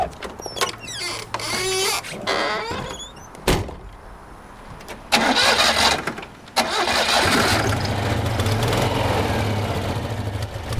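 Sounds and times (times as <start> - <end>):
mechanical clunks and squeaks of a Citroën 2CV: 0.0 - 3.8
Citroën 2CV small air-cooled engine cranking, catching and idling: 5.0 - 10.7.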